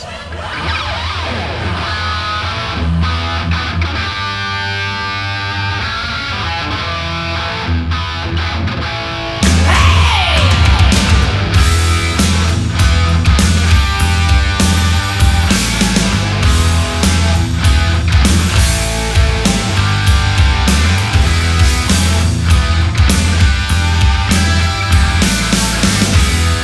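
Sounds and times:
loud rock song with driving drums and distorted guitars: 0.3 - 26.6.

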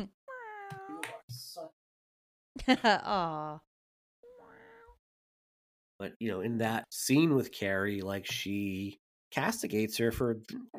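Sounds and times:
cat meowing: 0.3 - 1.3, 4.2 - 5.0
speech: 2.6 - 3.7, 6.0 - 10.7.

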